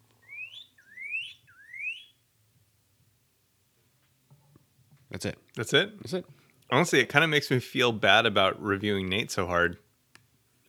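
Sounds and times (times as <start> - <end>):
recorded bird call with rising whistle notes: 0.0 - 2.3
speech: 5.1 - 9.8.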